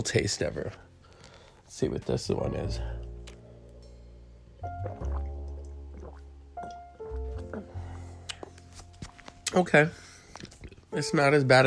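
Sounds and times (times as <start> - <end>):
speech: 0.0 - 0.9, 1.7 - 3.0, 9.5 - 10.1, 10.9 - 11.6
dripping: 4.6 - 8.4
water sloshing in a glass as a tablet is mixed in: 4.7 - 7.7.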